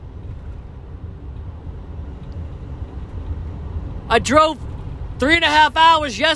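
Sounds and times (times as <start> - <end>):
road and engine noise inside a moving truck cab: 0.0 - 6.3
speech: 4.1 - 6.3.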